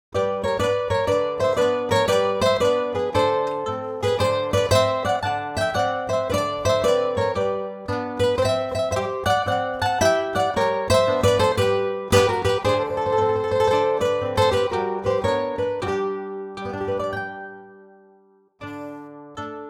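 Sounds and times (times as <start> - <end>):
ethnic guitar music: 0.1 - 19.6.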